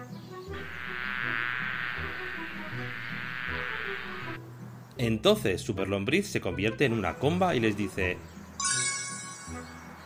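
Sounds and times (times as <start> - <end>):
swarm of bees buzzing: 0.5 - 4.4
low tonal hum: 0.6 - 4.4
speech: 5.0 - 8.3.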